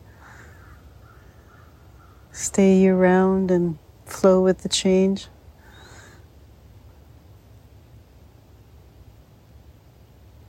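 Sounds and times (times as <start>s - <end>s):
low steady outdoor rumble: 0.0s - 10.4s
crow or raven cawing overhead: 0.1s - 2.3s
speech: 2.4s - 5.4s.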